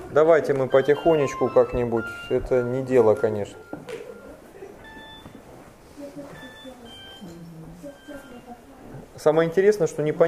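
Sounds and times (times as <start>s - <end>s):
speech: 0.1s - 4.0s, 9.2s - 10.2s
mobile phone ringtone of short thin electronic beeps: 0.6s - 5.5s, 6.3s - 8.5s
murmuring voices: 0.7s - 9.2s.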